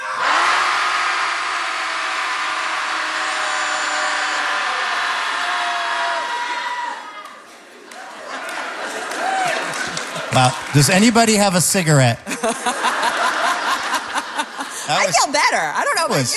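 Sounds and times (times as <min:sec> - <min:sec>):
group of people in Portland yelling together: 0:00.0 - 0:07.2
laughter: 0:07.7 - 0:11.5, 0:12.2 - 0:15.5
speech: 0:10.4 - 0:12.8, 0:14.9 - 0:16.3.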